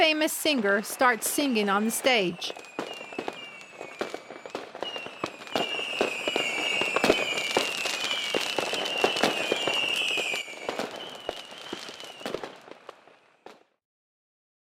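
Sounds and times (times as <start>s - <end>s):
speech: 0.0s - 2.7s
fireworks crackling and banging: 0.0s - 13.7s.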